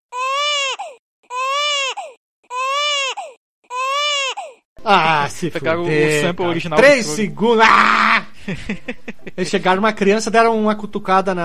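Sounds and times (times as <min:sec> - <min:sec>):
restored video game baby crying sound effect: 0:00.1 - 0:04.6
speech: 0:04.8 - 0:11.4
laughter: 0:08.0 - 0:09.5.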